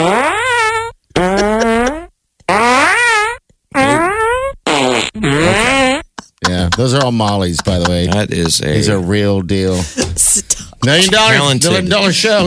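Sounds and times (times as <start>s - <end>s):
loud squeaky farts: 0.0s - 6.2s
laughter: 1.2s - 2.0s, 6.2s - 12.4s
speech: 6.8s - 12.4s.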